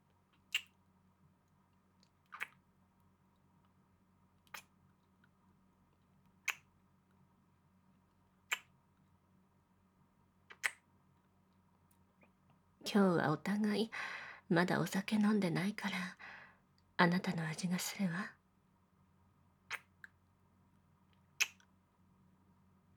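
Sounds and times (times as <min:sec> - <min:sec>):
faint steady hum: 0:00.0 - 0:22.9
soft kissing smacks: 0:02.3 - 0:02.6, 0:10.5 - 0:10.8, 0:21.4 - 0:21.6
speech: 0:12.9 - 0:16.3, 0:17.0 - 0:18.4.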